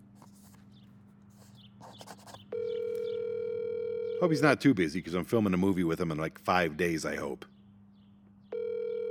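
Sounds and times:
electronic phone ringing tone: 2.5s - 4.4s, 8.5s - 9.1s
speech: 4.2s - 7.5s.

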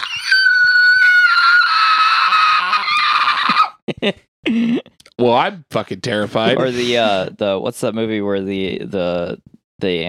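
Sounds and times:
voice imitating a horror-movie alien scream: 0.0s - 3.8s
speech: 4.0s - 10.0s.

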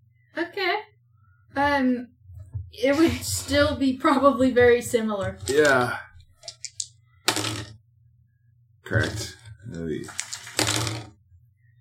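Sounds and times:
speech: 1.8s - 2.1s, 2.7s - 6.1s, 8.9s - 10.3s
dice clattering on a table: 5.2s - 7.8s, 9.0s - 11.1s.

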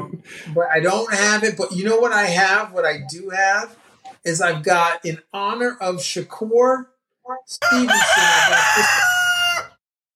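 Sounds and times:
speech: 0.2s - 9.2s
rooster morning crow: 7.6s - 9.8s.

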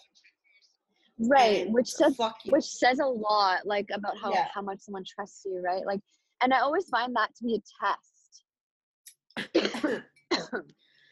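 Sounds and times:
speech: 1.2s - 8.1s, 9.4s - 10.8s
person coughing after choking on coffee: 9.4s - 10.6s
throat clearing: 9.4s - 10.6s.

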